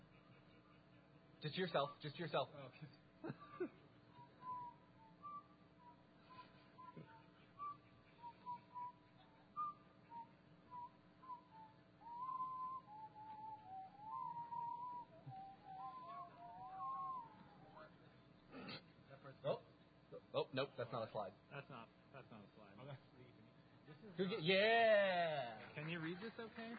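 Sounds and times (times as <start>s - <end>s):
brief soft noises: 0.0s - 26.7s
faint room hum: 0.0s - 26.7s
speech: 1.4s - 3.9s, 20.8s - 22.0s, 24.2s - 24.9s, 26.0s - 26.7s
person whistling a meandering melody: 4.1s - 17.8s.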